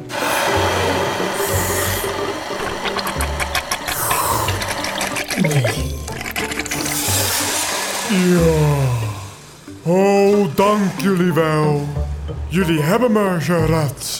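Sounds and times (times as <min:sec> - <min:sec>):
strong stream of water spraying: 0:00.0 - 0:09.5
speech: 0:10.7 - 0:14.1.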